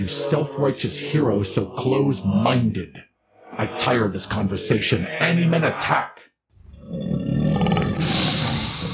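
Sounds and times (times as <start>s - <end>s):
speech: 0.0s - 6.2s, 6.9s - 7.2s
hybrid animal monsters roaring: 6.7s - 8.9s.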